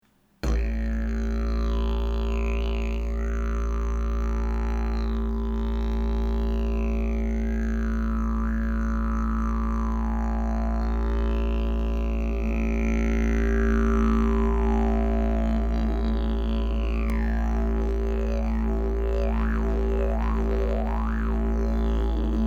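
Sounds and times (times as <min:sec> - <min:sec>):
didgeridoo: 0:00.4 - 0:22.4.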